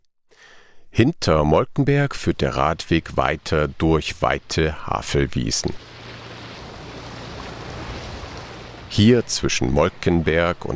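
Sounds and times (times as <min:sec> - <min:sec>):
breezy wind: 0:00.9 - 0:10.7
speech: 0:01.0 - 0:05.9, 0:08.9 - 0:10.7
rushing river water: 0:02.4 - 0:10.7
boat motor droning on the Havel river: 0:05.8 - 0:10.7.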